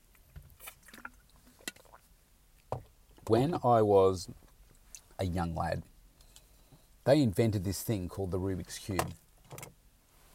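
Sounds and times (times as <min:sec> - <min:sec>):
soft slurping and swallowing: 0:00.6 - 0:02.0
person sipping a drink: 0:00.6 - 0:02.1
speech: 0:03.3 - 0:04.4, 0:05.2 - 0:05.9, 0:07.1 - 0:09.2.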